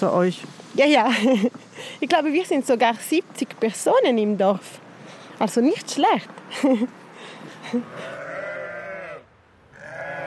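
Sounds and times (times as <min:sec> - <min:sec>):
speech: 0:00.0 - 0:04.8, 0:05.4 - 0:08.2
freshly shorn ewes and lambs bleating in a large enclosure: 0:07.9 - 0:10.2.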